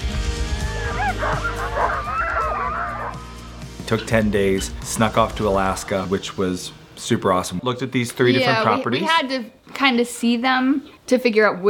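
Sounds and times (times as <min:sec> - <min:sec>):
sled dogs barking and yipping while dog sledding in Alaska: 0:00.3 - 0:03.4
speech: 0:03.9 - 0:11.6.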